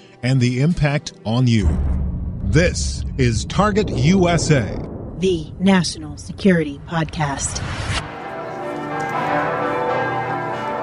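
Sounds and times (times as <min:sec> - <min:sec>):
speech: 0:00.2 - 0:08.1
church bells pealing from a Catholic church on a city square: 0:08.1 - 0:10.8.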